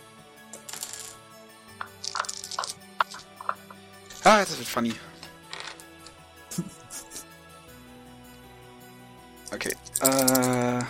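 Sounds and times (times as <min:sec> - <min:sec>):
dice clattering across a hard tabletop: 0:00.6 - 0:01.2, 0:01.8 - 0:04.3, 0:05.5 - 0:05.8, 0:09.5 - 0:10.8
speech: 0:04.2 - 0:05.1, 0:10.0 - 0:10.3
laughter: 0:06.5 - 0:07.2.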